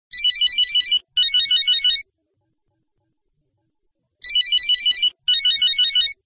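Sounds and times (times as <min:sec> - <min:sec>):
Nokia 1110 old mobile phone ringtone: 0:00.1 - 0:02.1, 0:04.2 - 0:06.2.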